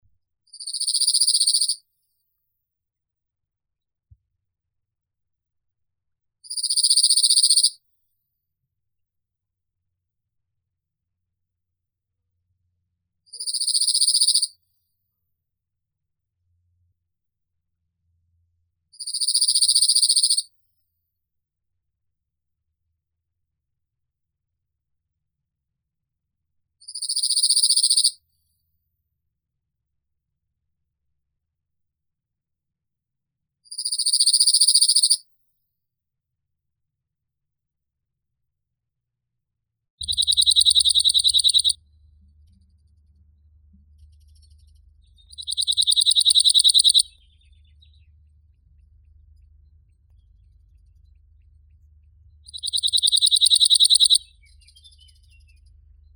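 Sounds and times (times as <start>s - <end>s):
Emberiza cirlus bird singing: 6.6s - 7.7s, 13.4s - 14.5s, 19.0s - 20.4s, 27.0s - 28.1s, 33.9s - 35.2s, 40.0s - 41.8s, 44.0s - 48.3s, 52.4s - 55.8s.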